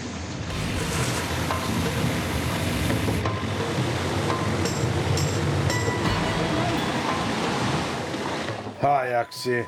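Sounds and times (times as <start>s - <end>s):
water rushing through a supply line: 0.0s - 8.8s
water spraying out from a leaking supply line: 0.5s - 3.2s
speech: 9.1s - 9.6s.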